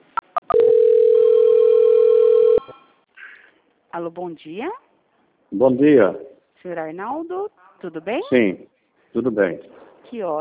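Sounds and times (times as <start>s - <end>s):
telephone call-transfer tone on a phone line: 0.5s - 2.8s
speech: 4.0s - 4.8s, 5.5s - 10.3s.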